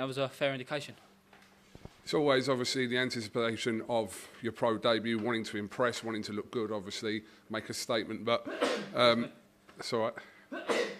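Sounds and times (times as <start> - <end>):
speech: 0.0 - 1.1, 2.1 - 10.6
person sneezing: 8.5 - 9.0, 10.5 - 10.9.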